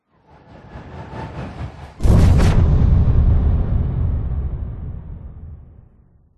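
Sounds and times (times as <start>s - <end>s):
science fiction bomb explosion: 1.1s - 6.3s
science fiction bomb incoming whoosh whizz: 1.7s - 6.0s.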